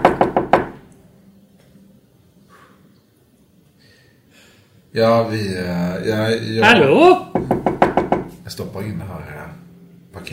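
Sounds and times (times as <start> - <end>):
firm knocks on a door: 0.0 - 0.8, 7.3 - 8.4
speech: 5.0 - 7.5, 8.6 - 9.6, 10.2 - 10.3.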